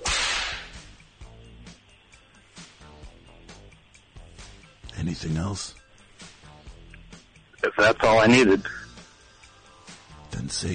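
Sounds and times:
whip cracking: 0.0s - 0.9s
speech: 5.0s - 5.8s, 7.6s - 8.8s, 10.6s - 10.7s.

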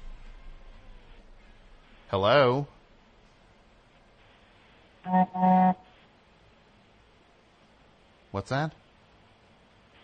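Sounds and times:
speech: 2.1s - 2.8s, 5.0s - 5.8s, 8.4s - 8.8s
car horn honks: 5.1s - 5.8s.

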